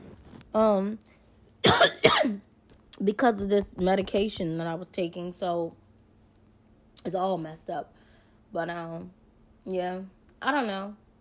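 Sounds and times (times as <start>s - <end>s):
speech: 0.5s - 5.8s, 7.0s - 11.0s
person with a sore throat coughing: 1.6s - 2.4s.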